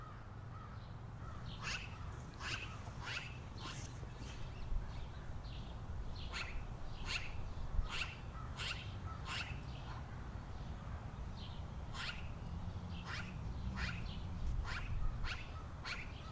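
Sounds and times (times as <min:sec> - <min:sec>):
steady low outdoor rumble: 0:00.0 - 0:16.2
magpies chattering with harsh rattling calls: 0:01.2 - 0:05.1, 0:06.2 - 0:10.1, 0:11.9 - 0:16.2.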